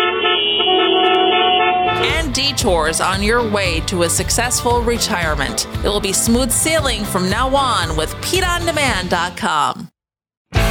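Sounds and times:
several car horns honking in a traffic jam: 0.0 - 3.4
speech: 2.4 - 9.8.

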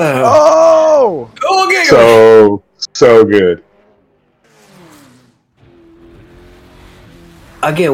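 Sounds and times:
speech: 0.0 - 3.7, 7.6 - 7.9
expensive high-performance sports car engine revving: 3.6 - 7.9.

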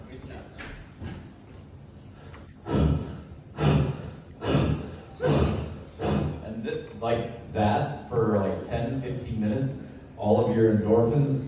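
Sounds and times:
person breathing forcefully in a breathing technique: 2.2 - 6.4
speech: 7.0 - 11.4.

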